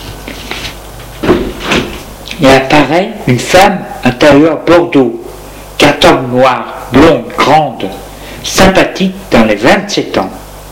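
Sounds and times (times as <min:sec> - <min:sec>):
door scraping and thumping as it swings: 0:00.6 - 0:02.1
speech: 0:02.4 - 0:10.4.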